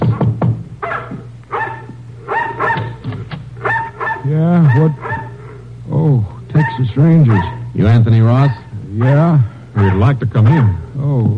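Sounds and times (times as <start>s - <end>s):
steady low hum: 0.0s - 11.3s
dog barking excitedly: 0.8s - 3.0s, 3.6s - 5.4s, 6.5s - 7.9s, 8.5s - 10.8s
speech: 4.3s - 5.1s, 7.0s - 11.3s.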